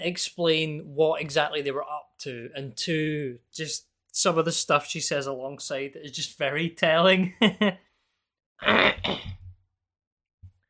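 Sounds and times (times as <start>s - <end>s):
speech: 0.0s - 7.9s, 8.6s - 9.4s
person clearing throat with a harsh gravelly rasp: 8.6s - 9.5s.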